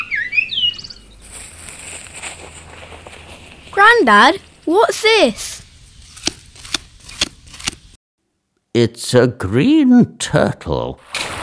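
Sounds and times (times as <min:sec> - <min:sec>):
small bird chirping high-pitched notes: 0:00.0 - 0:01.3
speech: 0:03.8 - 0:05.5, 0:08.8 - 0:11.1.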